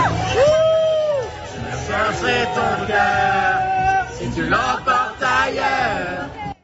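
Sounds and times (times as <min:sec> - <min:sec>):
crowd of fans cheering and screaming outdoors on a street in Paris: 0:00.0 - 0:05.1
steady crowd babble: 0:00.0 - 0:06.6.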